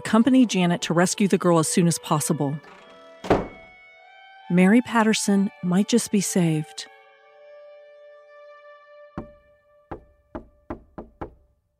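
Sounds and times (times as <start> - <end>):
speech: 0.1 - 2.8, 4.5 - 6.9
soft knocking on large heavy wooden door: 9.2 - 11.4.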